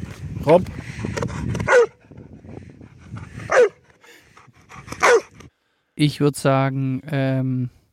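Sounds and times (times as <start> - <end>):
speech: 0.4 - 1.1, 6.0 - 7.8
dog barking: 1.7 - 2.0, 3.5 - 3.8, 5.0 - 5.3.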